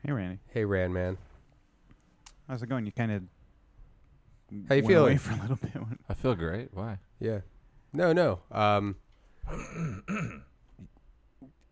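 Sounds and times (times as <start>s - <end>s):
speech: 0.0s - 1.3s, 2.5s - 3.4s, 4.5s - 10.9s
man clearing his throat with a rough cough: 9.4s - 11.0s.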